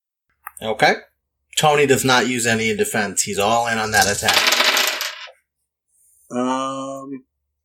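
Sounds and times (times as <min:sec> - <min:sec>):
speech: 0:00.6 - 0:04.8, 0:06.3 - 0:07.3
dice clattering across a hard surface: 0:03.4 - 0:05.3.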